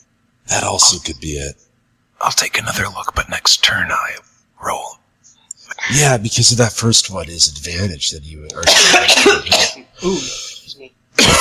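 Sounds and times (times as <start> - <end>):
speech: 0.5 - 5.0, 5.8 - 11.3
loud harsh coughing: 8.6 - 10.2, 11.2 - 11.3
raspy throat clearing: 8.6 - 10.2, 11.2 - 11.3.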